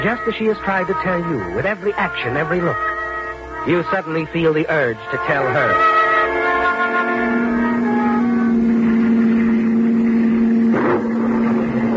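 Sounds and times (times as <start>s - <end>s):
speech: 0.0s - 2.9s, 3.6s - 5.9s
rushing road noise: 0.0s - 11.9s
car engine droning at high revs racing along a cliff road in driving rain: 7.1s - 11.9s.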